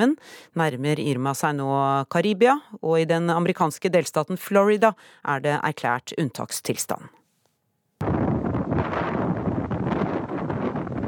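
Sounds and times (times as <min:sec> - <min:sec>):
speech: 0:00.0 - 0:07.2
strong wind roaring on the coast of Antigua as Hurricane Irma approaches: 0:08.0 - 0:11.0.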